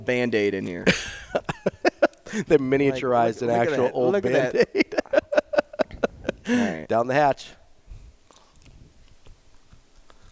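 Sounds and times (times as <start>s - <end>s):
speech: 0.0s - 1.2s, 2.3s - 4.8s, 6.5s - 7.6s
laughter: 0.8s - 6.9s
person chewing a piece of candy: 8.2s - 10.3s.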